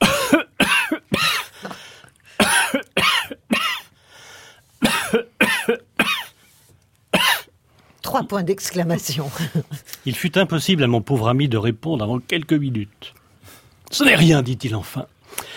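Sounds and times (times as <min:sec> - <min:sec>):
person coughing fit with harsh hacking coughs: 0:00.0 - 0:03.9, 0:04.8 - 0:06.3, 0:07.2 - 0:07.5
person gasping: 0:01.4 - 0:02.4
speech: 0:08.2 - 0:13.2, 0:13.9 - 0:15.4.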